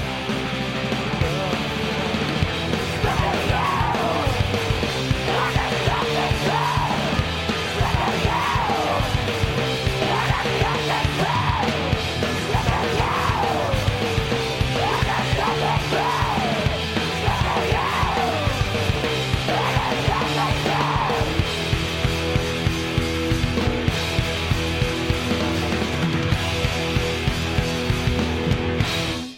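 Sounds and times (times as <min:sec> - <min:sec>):
driving guitars and drums in emo rock song: 0:00.0 - 0:29.3
wild strained screamed vocals in emo rock song: 0:02.9 - 0:04.5, 0:05.1 - 0:09.2, 0:09.9 - 0:14.0, 0:14.6 - 0:18.6, 0:19.3 - 0:21.5.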